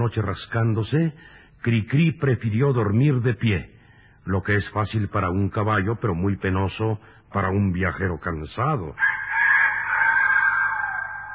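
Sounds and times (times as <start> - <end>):
speech: 0.0 - 9.2
rooster crowing: 9.0 - 11.3.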